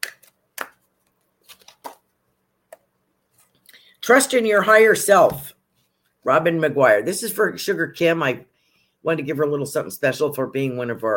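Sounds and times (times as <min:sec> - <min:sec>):
card being drawn from a deck of cards: 0:00.0 - 0:02.1
speech: 0:04.0 - 0:05.5, 0:06.2 - 0:11.1.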